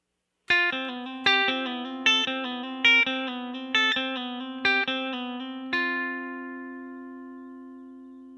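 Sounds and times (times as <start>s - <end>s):
slightly distorted electric guitar lick in F ending on the G string: 0.5s - 8.3s.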